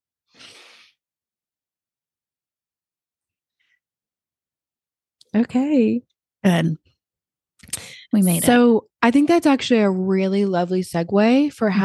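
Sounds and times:
group drawing a deep breath together: 0:00.3 - 0:01.0
speech: 0:05.3 - 0:06.9, 0:07.7 - 0:11.8.

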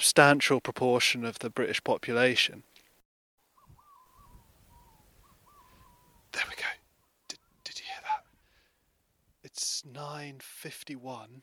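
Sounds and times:
speech: 0:00.1 - 0:02.7, 0:09.8 - 0:11.4
faint distant Manx shearwater calls on hillside: 0:03.5 - 0:08.4
breathy bursts of whispering or rustling: 0:05.6 - 0:08.8.

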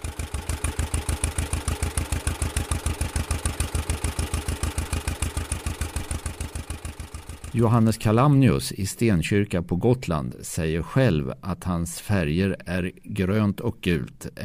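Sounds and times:
two-cylinder John Deere tractor engine idling with deep steady thumping: 0:00.0 - 0:07.6
speech: 0:07.6 - 0:14.4.

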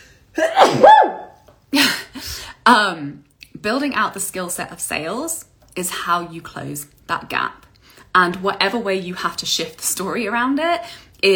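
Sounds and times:
sneeze: 0:00.4 - 0:01.3
speech: 0:02.7 - 0:07.6, 0:08.2 - 0:11.3.

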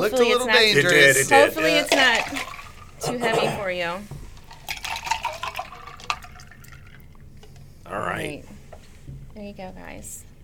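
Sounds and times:
speech: 0:00.0 - 0:02.4, 0:03.0 - 0:04.2, 0:07.9 - 0:08.5, 0:09.4 - 0:10.2
mixed drink with vodka and mint poured into a glass: 0:01.8 - 0:03.0, 0:04.5 - 0:07.3.

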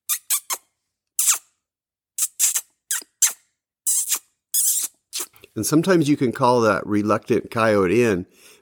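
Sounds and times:
squeaks from kissing the back of a hand imitating a rodent: 0:00.0 - 0:01.6, 0:02.2 - 0:05.4
speech: 0:05.6 - 0:08.5.

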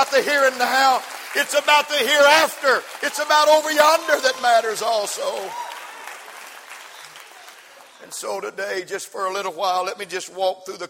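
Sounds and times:
audience applause: 0:00.0 - 0:08.5
speech: 0:00.1 - 0:05.7, 0:08.0 - 0:10.8.

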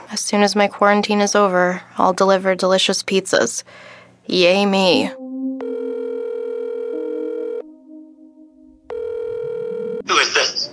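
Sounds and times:
speech: 0:00.1 - 0:05.2
telephone ringing with long steady electronic tones: 0:05.6 - 0:07.6, 0:08.9 - 0:10.1.

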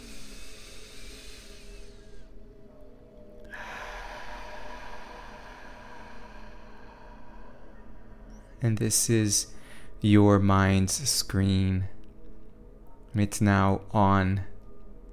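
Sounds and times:
deep breath in during a guided visualization exercise: 0:00.0 - 0:02.4, 0:03.5 - 0:08.6, 0:09.5 - 0:10.0
speech: 0:08.6 - 0:12.0, 0:13.2 - 0:14.5.

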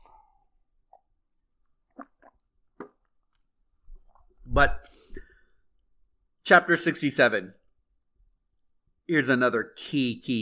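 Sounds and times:
person sipping water: 0:00.0 - 0:05.4
speech: 0:04.6 - 0:04.9, 0:06.5 - 0:07.6, 0:09.1 - 0:10.4.

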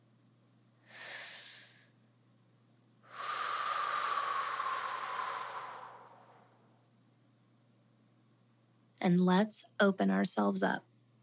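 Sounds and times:
deep cleansing breath taken during a guided relaxation: 0:00.8 - 0:02.0, 0:03.0 - 0:06.8
speech: 0:09.0 - 0:10.9.

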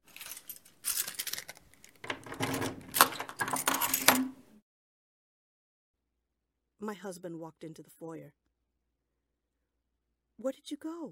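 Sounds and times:
metal keys jangling at a door: 0:00.0 - 0:04.4
rattling at a door lock: 0:00.0 - 0:04.4
speech: 0:06.9 - 0:08.5, 0:10.4 - 0:11.1.

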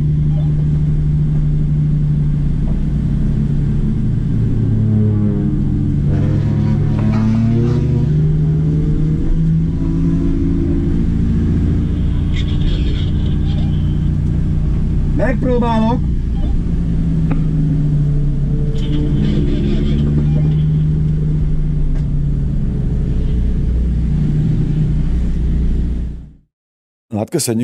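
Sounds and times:
loud car engine rumbling and revving: 0:00.0 - 0:26.4
speech: 0:27.3 - 0:27.6.

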